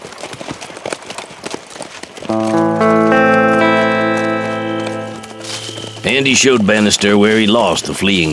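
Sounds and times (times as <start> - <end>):
horses and pack mule hooves clip-clopping as riders ride out: 0.0 - 2.7
sustained music: 2.3 - 6.6
speech: 6.1 - 8.3.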